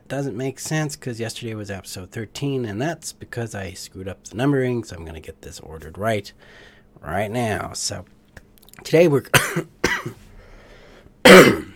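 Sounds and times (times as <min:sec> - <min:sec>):
speech: 0:00.1 - 0:08.2, 0:08.8 - 0:10.2
person coughing: 0:09.3 - 0:10.2, 0:11.2 - 0:11.7.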